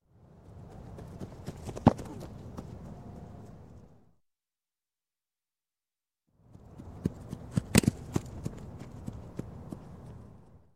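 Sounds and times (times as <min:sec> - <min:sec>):
football running catch: 0:01.4 - 0:02.7, 0:07.0 - 0:09.2.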